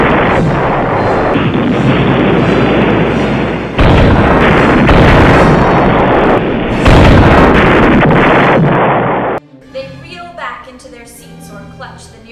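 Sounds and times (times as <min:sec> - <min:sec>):
heavy blasts and crashing bursts: 0:00.0 - 0:09.4
massive explosion booming with a deep rumbling roar: 0:00.0 - 0:09.4.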